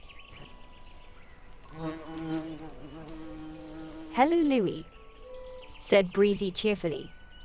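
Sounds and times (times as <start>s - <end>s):
bee buzzing: 0.1s - 5.8s
speech: 4.2s - 4.9s, 5.8s - 7.2s.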